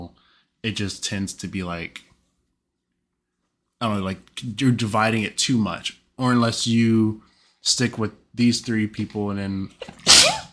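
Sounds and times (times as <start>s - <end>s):
speech: 0.6s - 2.1s, 3.8s - 10.3s
person sneezing: 9.8s - 10.5s.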